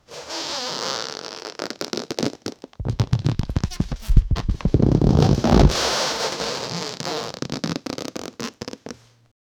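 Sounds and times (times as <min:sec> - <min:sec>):
loud flapping of balloon: 0:02.8 - 0:08.6.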